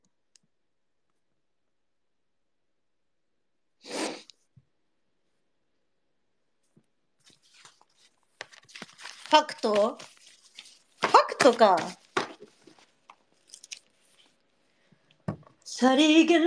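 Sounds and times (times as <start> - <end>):
person sneezing: 3.8 - 4.3
rustling: 7.2 - 14.4
speech: 9.3 - 10.2, 11.4 - 12.0, 15.8 - 16.4.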